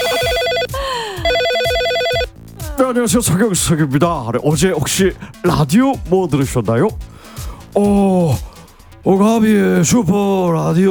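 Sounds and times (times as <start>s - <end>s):
telephone ringing tones while a call is placed: 0.0s - 2.4s
speech: 2.8s - 7.1s, 7.7s - 10.9s.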